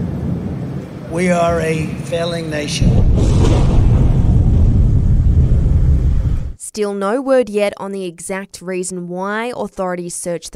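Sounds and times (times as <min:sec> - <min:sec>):
speech: 0:01.1 - 0:03.7, 0:06.8 - 0:10.5
deep continuous thunder rumble from a storm sound effect: 0:02.6 - 0:06.6.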